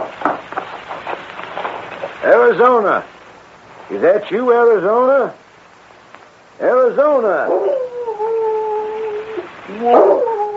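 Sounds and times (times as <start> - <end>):
speech: 2.2 - 3.1, 3.9 - 5.4, 6.6 - 7.7, 9.7 - 10.3
dog howling and whimpering: 7.5 - 10.5.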